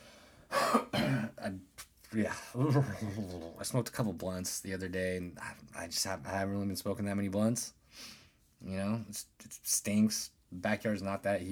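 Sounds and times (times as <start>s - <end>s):
person clearing throat: 0.5s - 1.4s
person coughing in rough raspy bursts: 0.5s - 1.4s
speech: 2.1s - 11.5s.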